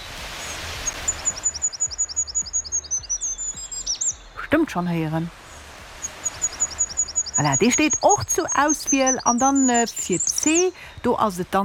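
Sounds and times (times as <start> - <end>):
small songbird singing a descending trill of high thin chirps: 0.0 - 11.5
soft hiss: 0.0 - 11.6
speech: 4.5 - 5.4, 7.4 - 11.6.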